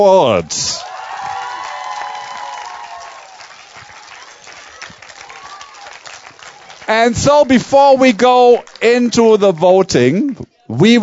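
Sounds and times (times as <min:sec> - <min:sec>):
speech: 0:00.0 - 0:00.8, 0:06.9 - 0:11.0
crowd cheering at a film award event in Erfurt, Germany: 0:00.0 - 0:11.0
crowd shouting at a film award event in Erfurt, Germany: 0:00.8 - 0:07.2.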